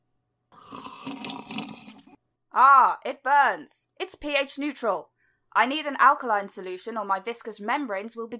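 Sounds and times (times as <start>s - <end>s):
water pouring into a glass: 0.6s - 2.2s
speech: 2.6s - 8.3s.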